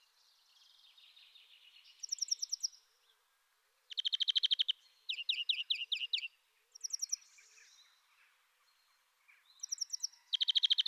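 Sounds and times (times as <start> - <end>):
European greenfinch calling: 3.9 - 7.2, 9.6 - 10.8.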